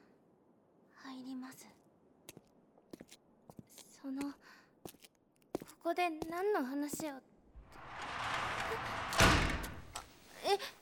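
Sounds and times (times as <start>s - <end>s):
speech: 1.2s - 1.9s, 4.0s - 4.6s, 5.8s - 7.3s, 10.5s - 10.8s
gymnasium storage room door slamming shut: 7.6s - 10.1s.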